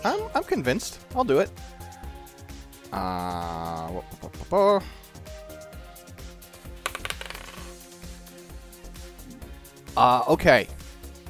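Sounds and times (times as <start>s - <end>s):
speech: 0.0s - 1.8s, 2.9s - 5.3s, 10.0s - 10.8s
dice clattering across a hard surface: 6.8s - 7.8s.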